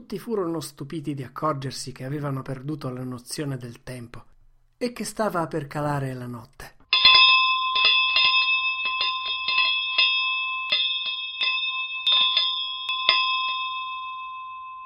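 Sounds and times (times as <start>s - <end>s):
speech: 0.1s - 6.8s
ferry boat bell clanging: 6.9s - 14.8s.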